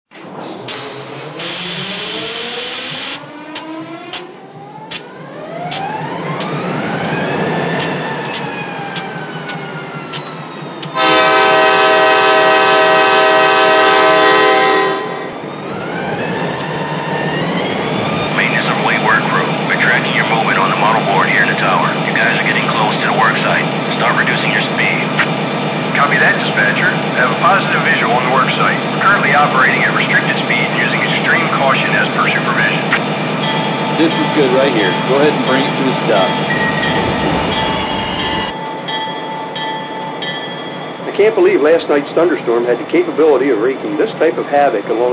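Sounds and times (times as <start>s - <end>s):
GP40 train: 0.1s - 45.1s.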